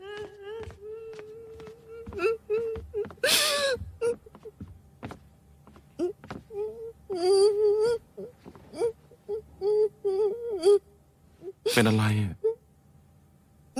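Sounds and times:
younger sister crying and wailing: 0.0s - 4.6s, 6.0s - 10.8s
speech: 11.8s - 12.4s.

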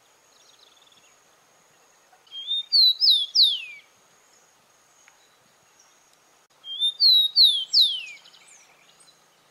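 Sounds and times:
rufous-collared sparrow (Zonotrichia capensis) singing: 2.3s - 3.9s, 6.6s - 9.0s.

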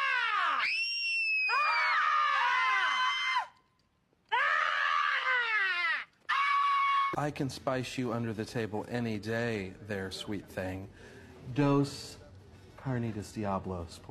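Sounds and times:
woman screaming loudly with shrill wavering shrieks: 0.0s - 3.6s, 4.3s - 7.2s
speech: 7.2s - 12.2s, 12.8s - 14.0s.

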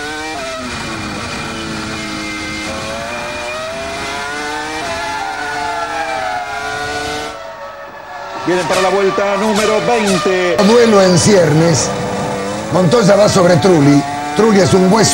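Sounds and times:
high-revving Formula One race car engine screaming through gear changes: 0.0s - 15.1s
speech: 8.5s - 12.0s, 12.7s - 15.1s.

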